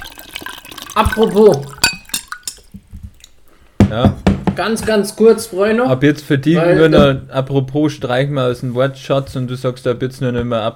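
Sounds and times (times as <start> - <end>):
sharp clinks of glassware: 0.0 - 2.7
water pouring into a glass: 0.0 - 3.4
speech: 1.0 - 1.7, 3.9 - 10.7.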